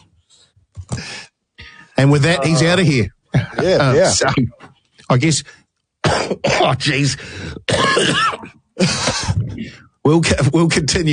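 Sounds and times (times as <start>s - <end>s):
speech: 2.0s - 5.6s, 6.2s - 11.1s
person clearing throat: 6.0s - 6.8s, 7.7s - 9.5s
person coughing: 6.0s - 6.9s, 7.6s - 9.5s.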